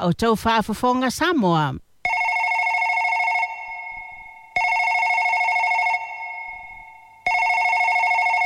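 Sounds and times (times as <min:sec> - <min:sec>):
speech: 0:00.0 - 0:01.8
telephone ringing with electronic trills: 0:02.0 - 0:08.4.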